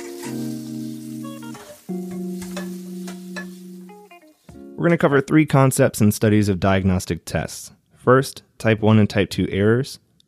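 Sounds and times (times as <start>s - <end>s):
food sizzling and crackling in a frying pan: 0.0s - 4.5s
speech: 4.8s - 10.0s.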